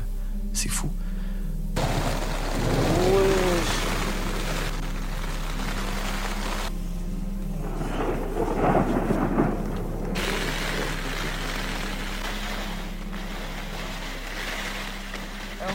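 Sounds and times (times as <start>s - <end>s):
speech: 0.6s - 1.1s
deep rolling thunder at night heard from inside a tent: 1.8s - 6.7s, 7.5s - 14.2s
steady rain heard from inside a tent: 1.8s - 15.7s.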